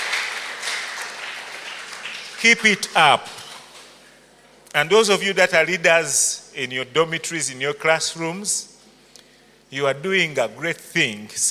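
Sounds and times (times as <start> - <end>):
audience applause at a school worship gathering: 0.0 - 3.7
speech: 2.4 - 3.4, 4.7 - 8.7, 9.7 - 11.4.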